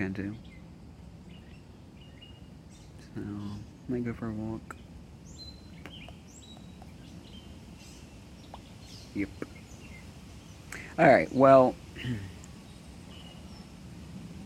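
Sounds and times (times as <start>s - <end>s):
speech: 0.0s - 0.5s, 3.2s - 4.8s, 9.2s - 9.6s, 11.0s - 12.3s
birds chirping and tweeting after a storm: 0.0s - 14.4s
soft steady ambient hiss: 0.0s - 14.4s.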